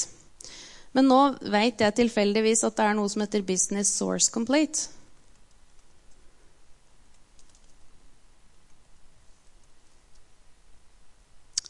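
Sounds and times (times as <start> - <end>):
speech: 1.0 - 5.0
soft keystrokes typing a database search on a computer keyboard: 7.1 - 7.8.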